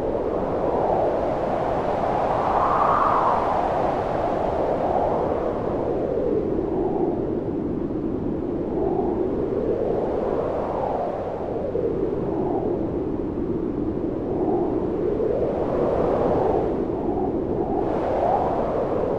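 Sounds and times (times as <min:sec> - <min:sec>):
wind howling: 0:00.0 - 0:19.1.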